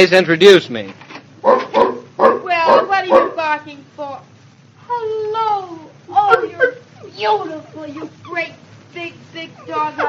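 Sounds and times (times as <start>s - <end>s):
speech: 0.0s - 4.3s, 4.9s - 10.0s
big dog barking: 1.4s - 3.5s.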